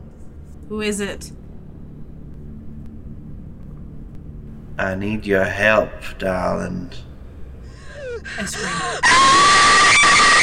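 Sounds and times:
speech: 0:00.7 - 0:01.4, 0:04.8 - 0:07.1, 0:08.2 - 0:10.2
person screaming: 0:07.8 - 0:10.4.

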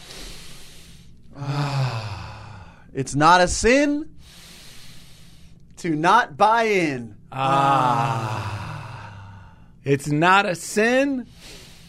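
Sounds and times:
deep breath in and out with sighing exhale: 0:00.0 - 0:02.9, 0:04.2 - 0:05.7, 0:07.6 - 0:09.8, 0:11.3 - 0:11.8
speech: 0:03.0 - 0:04.1, 0:05.8 - 0:08.5, 0:09.8 - 0:11.6.

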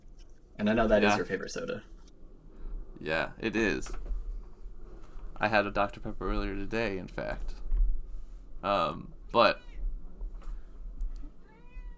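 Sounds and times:
low hum: 0:00.0 - 0:11.9
speech: 0:00.6 - 0:02.0, 0:03.0 - 0:04.1, 0:05.4 - 0:07.6, 0:08.6 - 0:09.6
cat meowing: 0:11.4 - 0:11.9.

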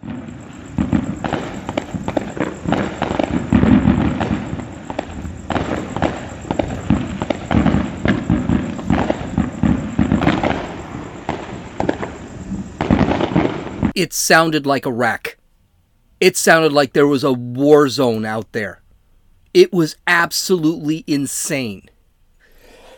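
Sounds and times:
fireworks exploding over a city: 0:00.0 - 0:14.4
speech: 0:14.0 - 0:15.3, 0:16.2 - 0:18.8, 0:19.5 - 0:21.9.

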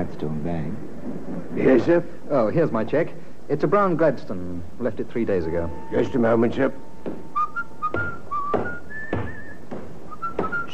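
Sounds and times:
speech: 0:00.0 - 0:07.3
dull thumps and clatters: 0:07.0 - 0:10.7
man whistling a wandering tune: 0:07.3 - 0:10.7.

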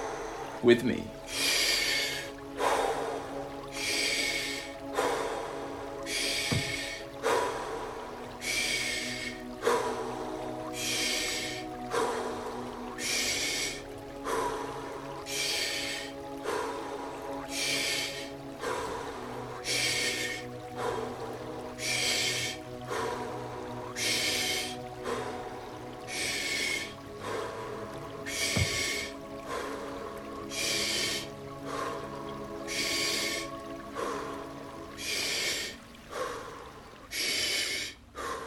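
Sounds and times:
breathing in and out through the mouth during a breathwork exercise: 0:00.0 - 0:00.6, 0:01.2 - 0:38.4
speech: 0:00.6 - 0:01.5.

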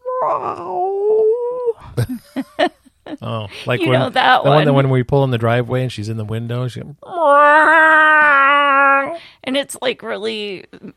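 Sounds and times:
person's voice imitating a mournful dog whimper: 0:00.0 - 0:02.0, 0:07.0 - 0:09.2
speech: 0:00.2 - 0:01.0, 0:01.9 - 0:07.7, 0:09.5 - 0:10.9.

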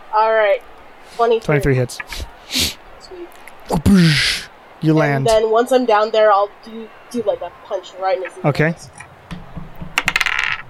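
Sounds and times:
speech: 0:00.1 - 0:02.8, 0:03.7 - 0:09.0
dice rolling on a hard tabletop: 0:09.7 - 0:10.6.

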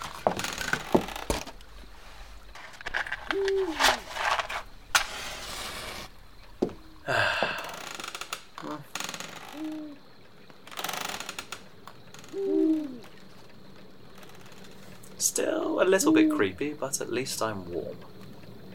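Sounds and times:
crackling and rustling noise: 0:00.0 - 0:15.4
owl hooting: 0:03.2 - 0:04.1, 0:09.5 - 0:10.1, 0:12.2 - 0:13.4, 0:15.4 - 0:16.8
speech: 0:15.3 - 0:18.1.

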